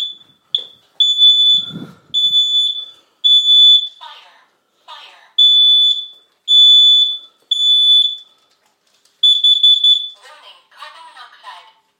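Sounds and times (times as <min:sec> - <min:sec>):
combined fire and carbon monoxide alarm beeping during a test: 0:00.0 - 0:04.0, 0:05.4 - 0:08.4, 0:09.2 - 0:10.2
fire and carbon monoxide alarm synthetic voice announcements: 0:04.0 - 0:05.4, 0:10.2 - 0:11.9.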